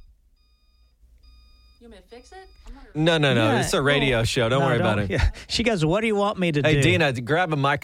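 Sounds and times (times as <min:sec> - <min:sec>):
refrigerator door-open alarm beeping: 0:00.0 - 0:04.0
low hum: 0:00.0 - 0:07.4
speech: 0:01.8 - 0:07.8.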